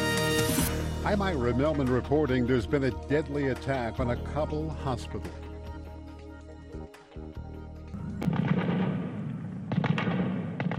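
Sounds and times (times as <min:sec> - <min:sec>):
speech: 0:01.0 - 0:05.4
gunfire echoing through a city: 0:08.1 - 0:10.7.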